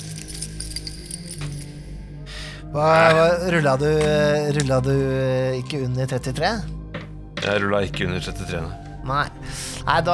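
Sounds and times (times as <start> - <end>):
bunch of keys jingling on a ring: 0.0 - 1.9
speech: 2.7 - 6.8, 7.4 - 10.1.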